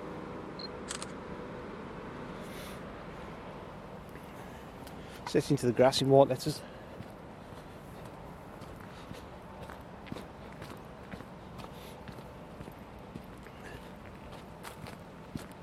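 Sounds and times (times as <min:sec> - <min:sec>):
speech: 0:05.3 - 0:06.7
soft footsteps on an urban walk: 0:06.8 - 0:15.6.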